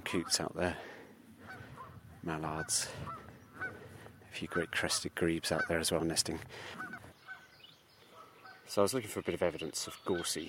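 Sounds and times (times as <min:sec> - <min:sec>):
faint outdoor ambience: 0:00.0 - 0:10.4
speech: 0:00.1 - 0:00.9, 0:02.2 - 0:03.2, 0:04.3 - 0:06.8, 0:08.7 - 0:10.4
Canada geese honking: 0:01.4 - 0:08.8, 0:10.0 - 0:10.4.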